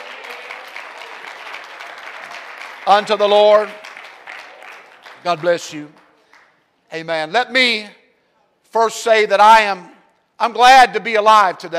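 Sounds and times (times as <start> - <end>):
church congregation clapping their hands during an evening service: 0.0 - 6.7
speech: 2.9 - 3.8, 5.2 - 6.0, 6.9 - 8.0, 8.7 - 11.7.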